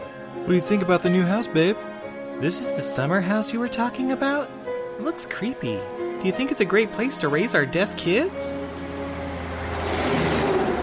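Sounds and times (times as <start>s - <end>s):
speech: 0.4s - 8.7s
truck rumbling past the house: 8.2s - 10.8s.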